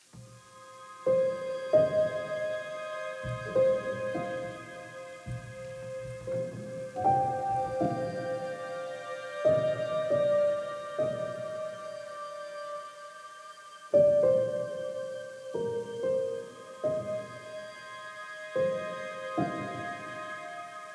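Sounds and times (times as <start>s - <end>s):
wandering piano: 0.0s - 20.9s.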